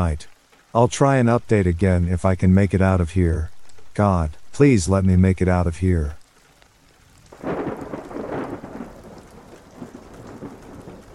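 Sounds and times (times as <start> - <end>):
speech: 0.0 - 6.2
heavy rain pouring down: 0.0 - 11.1
deep rumble of thunder: 7.2 - 11.1.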